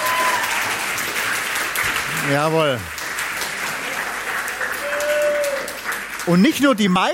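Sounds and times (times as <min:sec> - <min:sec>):
steady dense audience applause: 0:00.0 - 0:07.1
speech: 0:02.3 - 0:03.0, 0:06.3 - 0:07.1.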